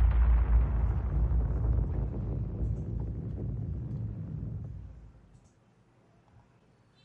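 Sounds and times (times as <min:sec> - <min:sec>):
huge explosion of a wooden crate packed with explosives hitting the ground: 0:00.0 - 0:05.2.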